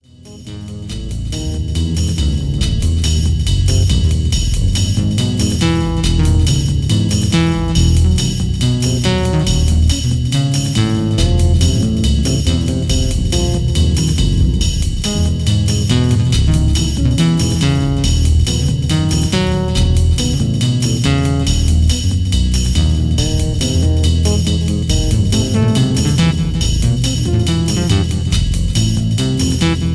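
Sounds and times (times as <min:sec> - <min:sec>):
swinging synth: 0:00.7 - 0:29.9.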